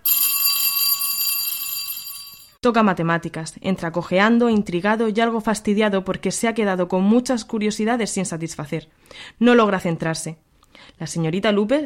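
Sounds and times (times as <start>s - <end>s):
school bell ringing with a bright metallic tone: 0.0s - 2.6s
speech: 2.6s - 11.8s.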